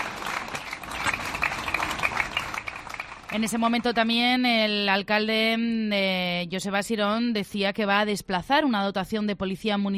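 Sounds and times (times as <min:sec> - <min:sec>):
crowd applauding with dense overlapping claps: 0:00.0 - 0:04.1
speech: 0:03.3 - 0:09.9.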